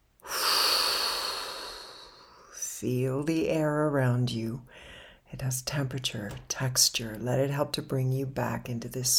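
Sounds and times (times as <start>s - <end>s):
deep inhale through the nose: 0.2s - 2.5s
long exhale blown out: 0.2s - 2.6s
speech: 2.8s - 9.1s.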